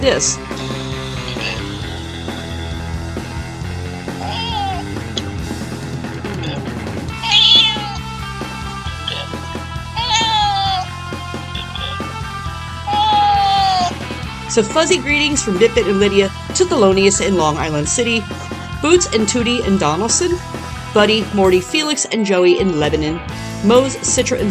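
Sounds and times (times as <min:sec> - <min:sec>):
speech: 0:00.0 - 0:00.8, 0:14.6 - 0:24.5
steady music: 0:00.0 - 0:24.5
cat meowing: 0:04.2 - 0:04.9, 0:07.2 - 0:08.1, 0:10.0 - 0:10.9, 0:12.9 - 0:14.0.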